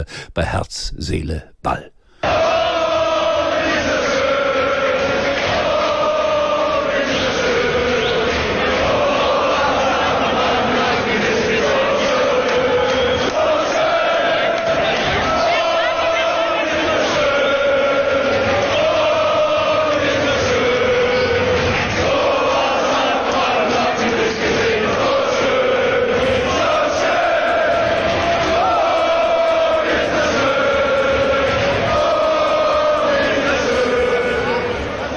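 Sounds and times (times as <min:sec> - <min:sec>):
speech: 0:00.0 - 0:02.0
crowd of football fans singing and chanting: 0:02.1 - 0:35.1
football crowd cheering and shouting: 0:26.2 - 0:35.1.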